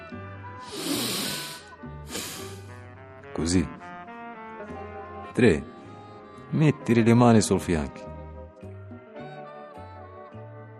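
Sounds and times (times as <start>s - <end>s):
slow controlled breathing in and out: 0.6s - 2.8s
speech: 3.4s - 3.8s, 5.4s - 5.7s, 6.5s - 8.1s.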